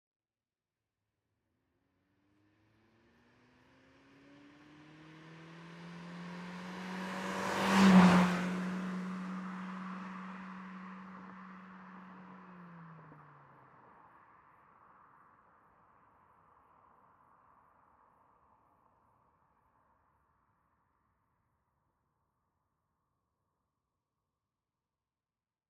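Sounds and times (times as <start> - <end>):
Ford Mondeo car passing by at 40mph: 2.4 - 15.0.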